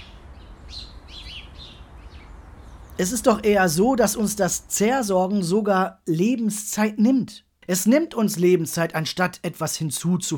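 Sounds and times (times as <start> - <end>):
birdsong chirps and trills: 0.0 - 4.3
low noise: 0.0 - 10.3
speech: 3.0 - 10.3.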